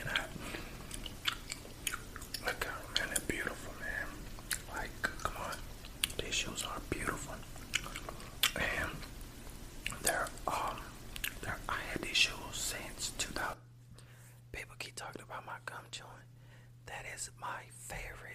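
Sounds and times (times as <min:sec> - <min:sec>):
quiet whispering: 0:00.0 - 0:01.0, 0:02.4 - 0:09.1, 0:09.9 - 0:13.7, 0:14.5 - 0:18.3
wet gum chewing with smacks and clicks: 0:00.0 - 0:03.6, 0:04.3 - 0:09.1, 0:09.8 - 0:11.6
faint steady hum: 0:00.0 - 0:18.3.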